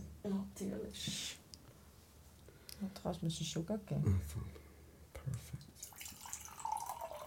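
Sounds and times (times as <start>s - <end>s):
speech: 0.2s - 1.4s, 2.8s - 4.6s, 5.2s - 5.6s
water poured into a glass: 5.8s - 7.2s.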